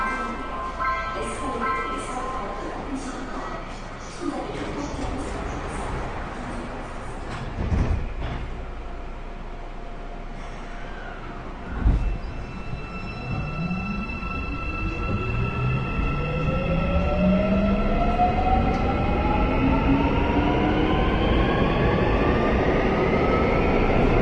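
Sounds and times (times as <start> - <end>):
subway train carriage rumble: 0.0 - 24.2
subway train doors sliding shut: 6.5 - 8.8.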